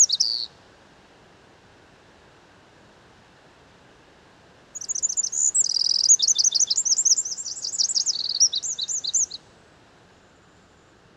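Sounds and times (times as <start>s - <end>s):
Eurasian wren Troglodytes troglodytes singing: 0.0s - 0.5s, 4.8s - 9.4s.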